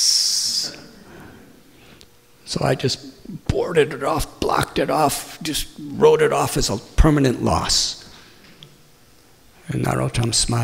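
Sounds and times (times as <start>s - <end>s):
person imitating the hiss of poisonous snakes: 0.0s - 0.9s
speech: 2.5s - 8.0s, 9.7s - 10.6s.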